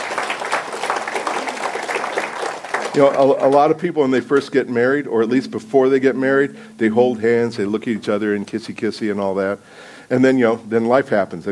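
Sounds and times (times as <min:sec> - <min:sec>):
audience applause: 0:00.0 - 0:03.9
speech: 0:03.0 - 0:11.5.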